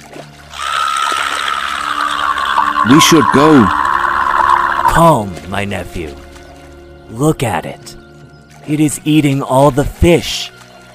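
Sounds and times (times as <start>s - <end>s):
stream water trickling: 0.0s - 10.9s
speech: 2.9s - 3.8s, 5.0s - 6.2s, 7.1s - 8.0s, 8.7s - 10.6s.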